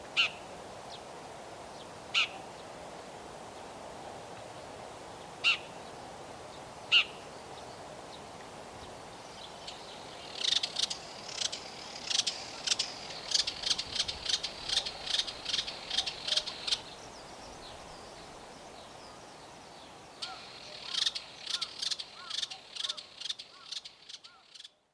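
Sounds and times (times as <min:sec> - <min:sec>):
brown shrike calling in Nagano: 0:00.2 - 0:00.5, 0:02.1 - 0:02.5, 0:05.4 - 0:05.7, 0:06.9 - 0:07.2, 0:09.7 - 0:17.0, 0:20.2 - 0:24.8.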